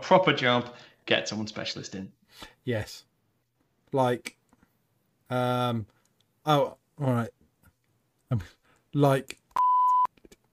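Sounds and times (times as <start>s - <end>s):
speech: 0.1s - 3.1s, 3.9s - 4.4s, 5.3s - 7.4s, 8.3s - 9.7s
steady electronic censor beep at a single pitch: 9.6s - 10.1s.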